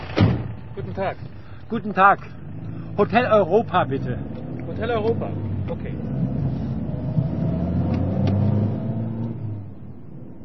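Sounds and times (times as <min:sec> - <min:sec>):
street noise: 0:00.0 - 0:10.4
taxi engine rumbling in a street: 0:00.0 - 0:10.4
speech: 0:00.8 - 0:02.4, 0:03.0 - 0:06.3
taxi engine revving: 0:02.2 - 0:09.9.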